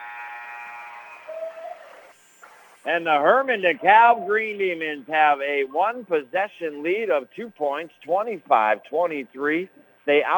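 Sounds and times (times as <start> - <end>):
basketball game buzzer at end of the first half: 0.0 - 1.3
faint hum: 0.1 - 10.3
speech: 2.8 - 10.3.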